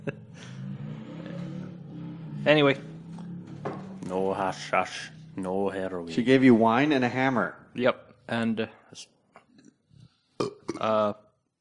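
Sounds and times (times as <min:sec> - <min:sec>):
speech: 0:02.4 - 0:02.9, 0:04.1 - 0:09.2, 0:10.4 - 0:11.2
loud low-pitched burp: 0:10.4 - 0:11.2.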